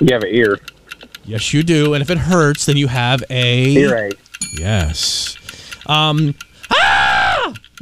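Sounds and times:
speech: 0:00.0 - 0:06.9, 0:07.5 - 0:07.8
faint clicks: 0:00.0 - 0:07.8
person screaming: 0:06.7 - 0:07.6.

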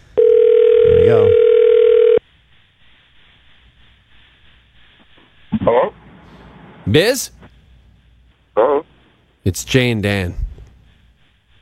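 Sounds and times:
electronic telephone tone from a phone call being placed: 0:00.2 - 0:02.2
speech: 0:06.9 - 0:07.4, 0:09.5 - 0:10.5.

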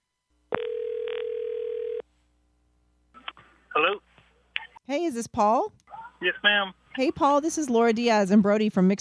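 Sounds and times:
ringback tone of an outgoing phone call: 0:00.5 - 0:02.0
speech: 0:04.9 - 0:08.9.

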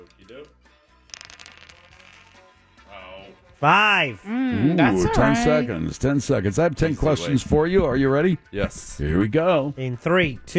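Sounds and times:
speech: 0:00.1 - 0:00.8, 0:02.9 - 0:10.5
dice clattering and rattling across a hard surface: 0:01.0 - 0:02.5
voices murmuring: 0:04.3 - 0:05.8.

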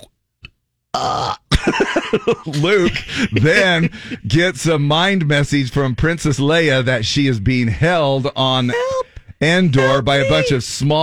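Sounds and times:
loud gurgling burp: 0:00.9 - 0:01.5
speech: 0:01.0 - 0:11.0
laughter: 0:01.6 - 0:04.2, 0:09.8 - 0:10.6.

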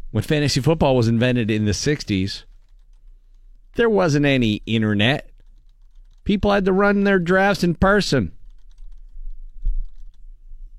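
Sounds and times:
speech: 0:00.1 - 0:02.5, 0:03.8 - 0:05.3, 0:06.2 - 0:08.4
typing on a keyboard: 0:02.4 - 0:03.8, 0:04.7 - 0:06.6, 0:07.9 - 0:10.3.

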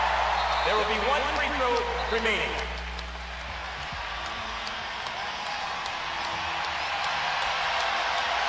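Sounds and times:
clapping: 0:00.0 - 0:08.4
huge arena crowd cheering and whooping: 0:00.0 - 0:08.4
speech: 0:00.7 - 0:02.6.

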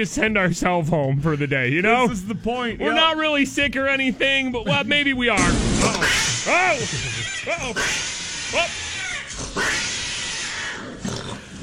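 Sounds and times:
speech: 0:00.0 - 0:08.8
noisy background: 0:00.0 - 0:11.6
laughter: 0:04.4 - 0:05.2, 0:05.8 - 0:07.8
animal snarl or growl: 0:05.6 - 0:11.6
cat-like yowls: 0:06.0 - 0:11.0.

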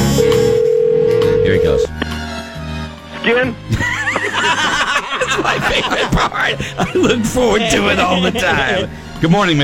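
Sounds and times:
loud electronic telephone ring: 0:00.2 - 0:01.9
speech: 0:03.3 - 0:03.8, 0:05.8 - 0:09.6
laughter: 0:03.7 - 0:08.9.

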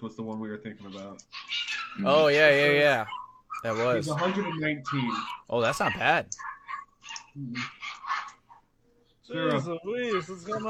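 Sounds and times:
speech: 0:00.0 - 0:06.6, 0:07.4 - 0:07.9, 0:09.3 - 0:10.6
dogs barking and snarling while fighting: 0:00.9 - 0:08.8.

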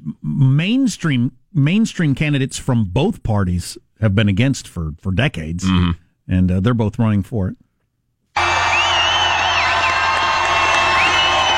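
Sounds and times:
speech: 0:00.4 - 0:07.6
high whoops and whistles from crowd: 0:08.4 - 0:11.5
large crowd cheering: 0:08.4 - 0:11.5.

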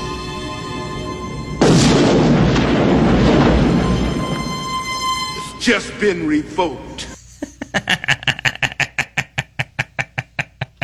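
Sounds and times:
gunshot sound effect with long booming tail: 0:01.6 - 0:04.8
laughter: 0:05.4 - 0:10.8
speech: 0:05.6 - 0:07.1.

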